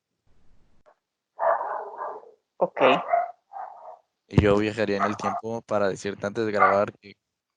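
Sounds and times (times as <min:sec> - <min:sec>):
dog letting out a drawn-out bark: 0:01.4 - 0:02.4, 0:03.0 - 0:04.1, 0:05.0 - 0:05.5, 0:06.6 - 0:06.9
speech: 0:02.6 - 0:03.2, 0:04.3 - 0:07.2.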